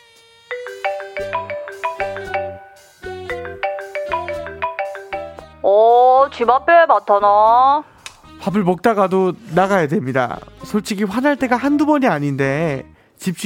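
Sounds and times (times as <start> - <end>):
melodic phone ringtone for an incoming call: 0.5 - 5.6
speech: 5.7 - 13.4.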